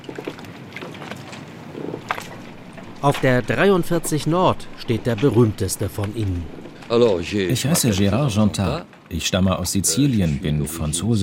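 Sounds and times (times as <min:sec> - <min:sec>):
water at a harbour pier: 0:00.0 - 0:08.8
moored fishing boats creaking and knocking: 0:00.0 - 0:11.2
wind on a harbour pier: 0:00.0 - 0:11.2
bright clanks: 0:02.0 - 0:09.0
speech: 0:03.0 - 0:11.2.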